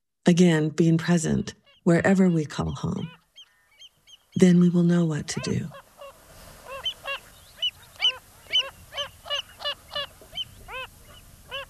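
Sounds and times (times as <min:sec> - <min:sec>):
speech: 0:00.3 - 0:03.2, 0:04.4 - 0:05.8
Wilson's phalarope nasal honking calls: 0:02.8 - 0:11.6.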